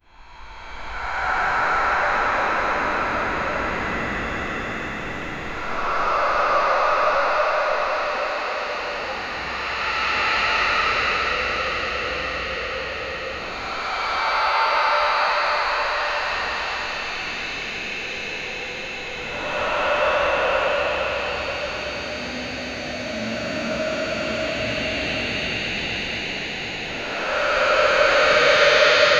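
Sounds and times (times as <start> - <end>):
spooky unsettling breathing ambience: 0.2 - 29.1.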